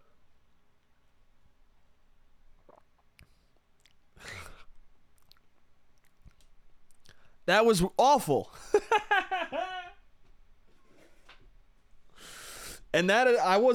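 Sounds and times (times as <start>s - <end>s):
person slurping lukewarm cold brew coffee: 2.6s - 3.2s
person swallowing: 2.6s - 3.2s
speech: 7.5s - 9.0s, 13.0s - 13.7s.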